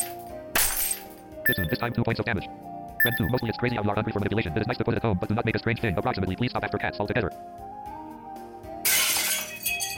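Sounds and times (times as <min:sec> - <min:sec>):
glass shattering video game effect: 0:00.0 - 0:01.2, 0:08.8 - 0:09.9
speech: 0:01.5 - 0:07.7.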